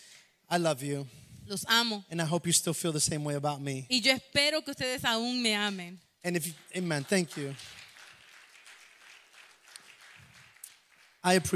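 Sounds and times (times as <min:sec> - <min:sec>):
speech: 0:00.5 - 0:07.8, 0:11.2 - 0:11.5
congregation applauding: 0:06.3 - 0:11.5.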